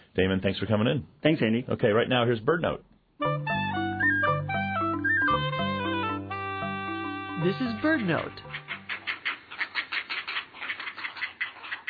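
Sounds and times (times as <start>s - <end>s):
speech: 0.2s - 3.4s, 7.4s - 8.6s
great blue heron nestlings calling with dry ticking notes at a colony: 3.8s - 11.8s.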